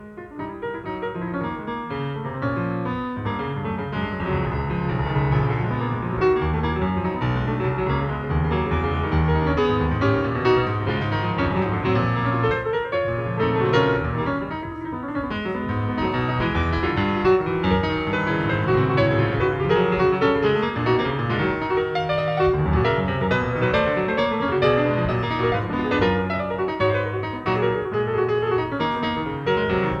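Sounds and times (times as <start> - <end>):
improvised piano playing: 0.0 - 29.9.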